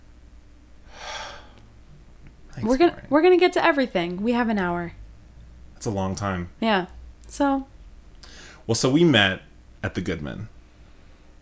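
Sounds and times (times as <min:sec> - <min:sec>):
person inhaling: 0:00.9 - 0:01.7, 0:08.2 - 0:08.7
speech: 0:02.6 - 0:05.0, 0:05.8 - 0:07.7, 0:08.7 - 0:10.5.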